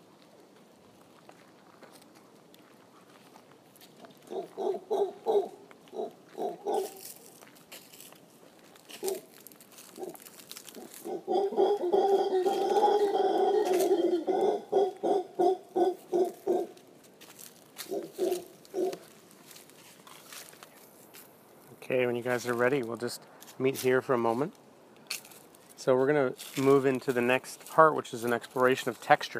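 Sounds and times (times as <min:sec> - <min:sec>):
howler monkeys grunting and roaring: 0:04.2 - 0:07.1, 0:09.0 - 0:09.3, 0:09.9 - 0:16.8, 0:17.8 - 0:19.1
speech: 0:22.2 - 0:24.6, 0:25.8 - 0:29.3.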